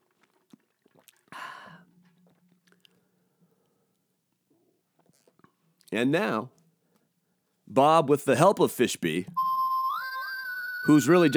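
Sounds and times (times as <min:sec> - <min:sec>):
person sipping water: 0:00.1 - 0:03.1
speech: 0:05.9 - 0:06.6, 0:07.8 - 0:09.4, 0:10.9 - 0:11.3.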